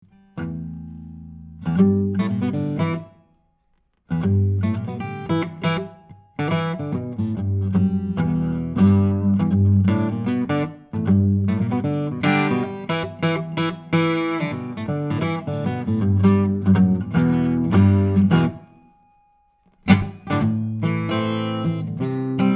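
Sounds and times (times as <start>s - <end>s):
Guild 12-string electric acoustic guitar improvisation: 0.0s - 22.5s.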